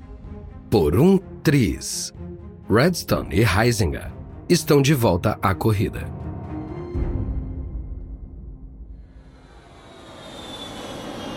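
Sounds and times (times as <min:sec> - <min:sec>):
speech: 0:00.7 - 0:06.2
business jet engine drone in cabin: 0:09.2 - 0:11.3
faint high whine: 0:09.3 - 0:11.3.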